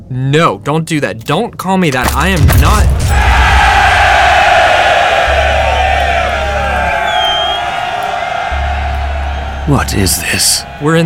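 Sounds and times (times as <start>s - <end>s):
speech: 0.1s - 3.3s, 9.7s - 11.0s
scattered shouts in a crowd: 2.6s - 11.0s
large crowd cheering and whooping: 3.0s - 11.0s.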